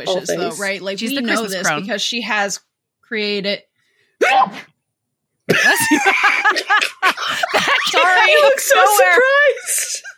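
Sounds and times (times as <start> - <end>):
speech: 0.0 - 4.7, 5.5 - 10.1
single sharp sneeze: 4.2 - 4.7
laughter-like chatter: 5.5 - 10.1.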